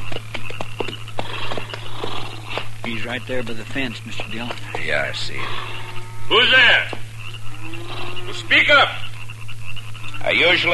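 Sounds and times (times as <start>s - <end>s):
horses' hooves clopping on a dry prairie as they are pulled to a stop: 0.0s - 7.7s
steady low hum: 0.0s - 10.7s
speech: 3.0s - 7.0s, 7.6s - 9.0s, 10.2s - 10.7s.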